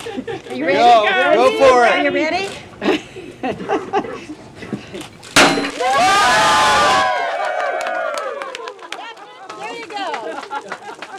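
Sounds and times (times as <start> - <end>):
speech: 0.5 - 4.3
champagne bottle shattering against a ship's bow at a christening: 5.4 - 6.0
over 20 attendees cheering and whooping at a ship christening: 5.8 - 8.6.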